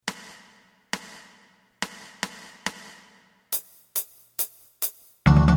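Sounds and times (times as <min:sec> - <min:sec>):
drum: 0:00.0 - 0:05.4.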